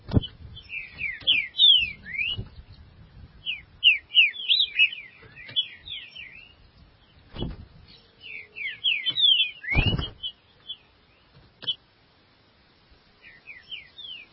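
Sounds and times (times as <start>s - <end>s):
Green-winged saltator song of fast downward-sweeping whistles: 0.1s - 2.6s, 3.4s - 6.6s, 7.4s - 10.9s, 13.2s - 14.3s
heavy thuds: 7.3s - 7.8s, 9.7s - 10.2s.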